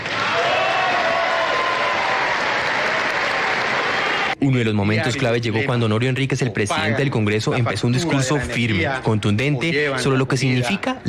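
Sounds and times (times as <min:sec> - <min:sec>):
audience applause from a large audience in a hall: 0:00.0 - 0:04.4
speech: 0:04.4 - 0:11.0.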